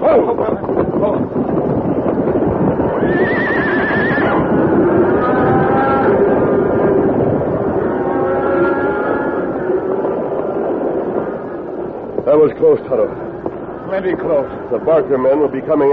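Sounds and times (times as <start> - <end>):
cattle herd's hooves thundering in a stampede: 0.0 - 15.9
speech: 0.1 - 0.6, 12.5 - 13.2, 13.9 - 15.9
horses whinnying: 2.8 - 10.2.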